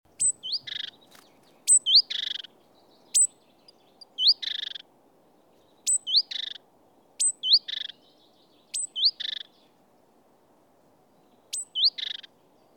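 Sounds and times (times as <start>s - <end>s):
great tit Parus major giving whistles and buzzy calls: 0.1s - 4.9s, 5.7s - 6.6s, 7.2s - 9.6s, 11.3s - 12.7s.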